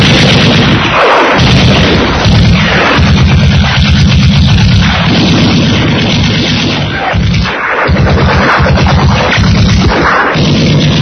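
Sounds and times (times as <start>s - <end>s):
dense continuous automatic weapons gunfire: 0.0s - 11.0s
heavy booming artillery blasts: 0.0s - 11.0s.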